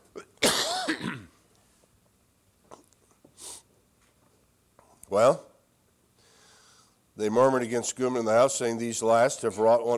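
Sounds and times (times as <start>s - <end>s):
person reading aloud coughing harshly: 0.1s - 1.4s
short breathy sniff: 3.3s - 3.7s, 6.2s - 7.0s
speech: 5.2s - 5.5s, 7.2s - 9.9s.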